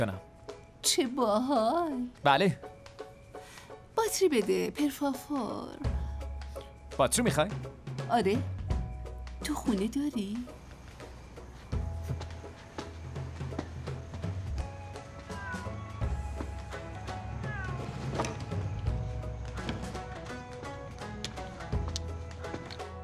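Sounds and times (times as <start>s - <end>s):
speech: 0.0s - 2.8s, 4.0s - 6.0s, 7.0s - 8.5s, 9.4s - 10.6s
busy musical background: 0.0s - 23.0s
cat meowing: 15.2s - 16.2s, 17.0s - 18.4s.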